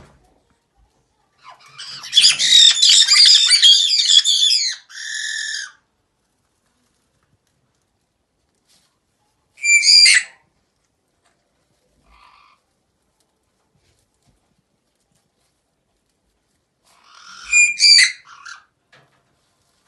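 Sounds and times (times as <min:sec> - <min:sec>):
caique parrots screaming: 0:01.6 - 0:05.8, 0:09.6 - 0:10.4, 0:17.0 - 0:18.7.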